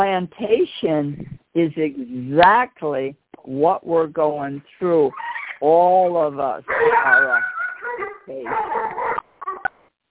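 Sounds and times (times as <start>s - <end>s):
speech: 0.0s - 7.5s, 8.3s - 8.9s
excited dog whining and yipping: 5.1s - 5.6s, 6.7s - 9.7s.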